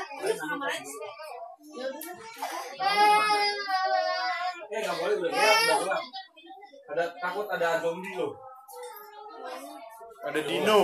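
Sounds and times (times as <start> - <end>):
children talking at play: 0.0 - 10.8
speech: 0.4 - 6.2, 6.9 - 8.5, 10.2 - 10.8
baby crying: 2.4 - 6.1.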